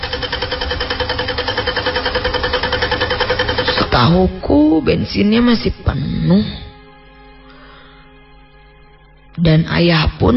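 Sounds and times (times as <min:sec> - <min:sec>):
car engine cranking without starting: 0:00.0 - 0:04.1
speech: 0:04.0 - 0:06.6, 0:09.4 - 0:10.3.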